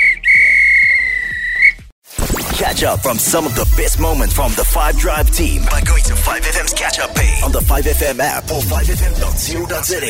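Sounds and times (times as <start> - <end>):
referee's whistle blown in one long shrill blast: 0.0 - 1.9
speech: 2.7 - 10.0.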